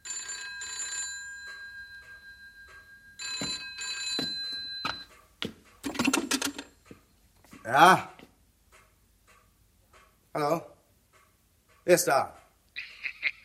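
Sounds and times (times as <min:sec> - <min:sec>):
telephone bell ringing: 0:00.0 - 0:05.1
telephone handset being handled: 0:05.8 - 0:06.7
speech: 0:07.7 - 0:08.1, 0:11.9 - 0:12.4.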